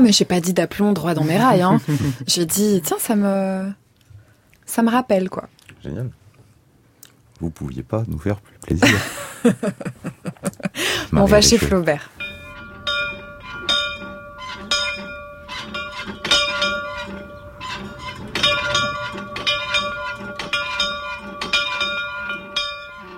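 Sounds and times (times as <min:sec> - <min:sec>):
speech: 0:00.0 - 0:03.8, 0:04.7 - 0:06.2, 0:07.4 - 0:12.2
laughter: 0:01.4 - 0:02.3, 0:08.8 - 0:11.8
antique bell rung vigorously: 0:11.2 - 0:23.1.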